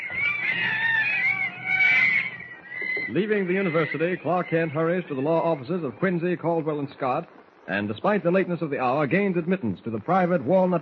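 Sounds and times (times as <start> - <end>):
monkeys chattering in a shrill warbling chorus: 0.0 - 6.1
speech: 3.1 - 10.8.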